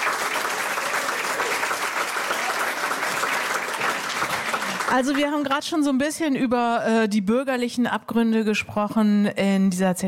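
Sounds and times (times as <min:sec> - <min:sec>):
audience applauding an actor guest on a radio programme: 0:00.0 - 0:05.6
speech: 0:04.9 - 0:10.0.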